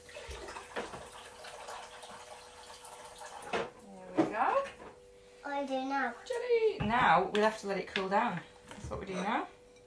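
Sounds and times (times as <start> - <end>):
cold water pouring into a bowl: 0.0 - 3.7
speech: 5.6 - 9.5.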